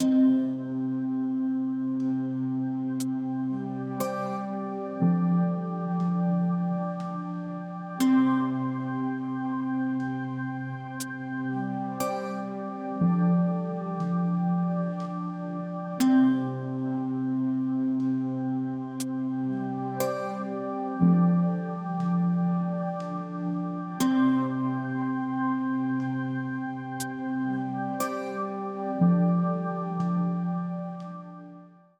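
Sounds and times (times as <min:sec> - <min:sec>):
dark quiet mysterious ambient music: 0:00.0 - 0:31.9.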